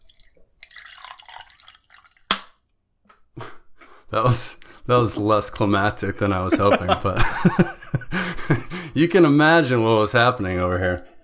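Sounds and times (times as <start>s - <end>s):
water poured into a cup splashing and trickling: 0.0s - 2.4s
water dripping: 0.0s - 2.8s
speech: 4.1s - 11.1s
laughter: 6.3s - 9.0s.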